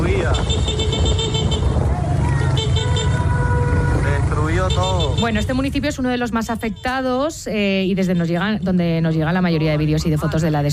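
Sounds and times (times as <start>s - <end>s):
engine rumble of a moving car: 0.0s - 7.8s
street traffic on an avenue in La Guaira after an earthquake: 0.0s - 10.7s
speech: 5.2s - 10.7s.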